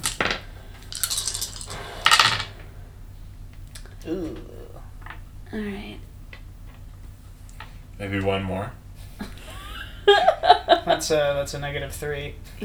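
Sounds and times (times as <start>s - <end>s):
small hard dice clattering and rattling across a tabletop: 0.0s - 2.6s
speech: 4.0s - 4.6s, 5.5s - 6.1s, 8.0s - 8.8s, 11.0s - 12.6s
laughter: 8.1s - 12.6s.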